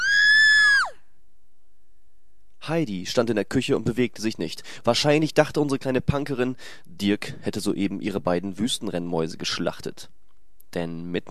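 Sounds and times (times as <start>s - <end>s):
woman screaming: 0.0s - 1.0s
speech: 2.7s - 11.2s.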